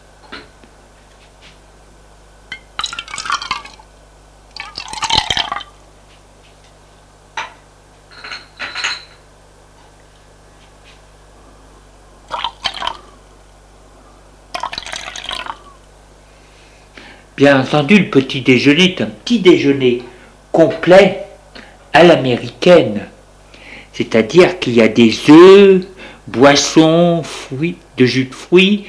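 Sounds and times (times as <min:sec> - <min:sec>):
tea and coffee pouring into cups: 0:02.8 - 0:03.9, 0:04.5 - 0:05.8, 0:12.3 - 0:13.1, 0:14.5 - 0:15.8
speech: 0:17.4 - 0:21.2, 0:22.0 - 0:23.1, 0:24.0 - 0:28.8.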